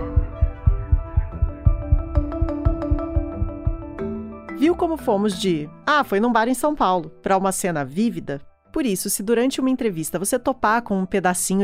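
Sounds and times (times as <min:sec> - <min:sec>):
rapid heartbeat thumps: 0:00.0 - 0:04.0
sharp ticking accents: 0:00.1 - 0:03.8
speech: 0:04.6 - 0:11.6.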